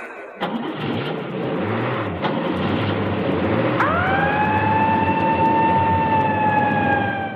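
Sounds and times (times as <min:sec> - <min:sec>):
dense rumbling engine-like roar: 0:00.4 - 0:07.3
police siren at a rock concert emergency: 0:00.4 - 0:07.3.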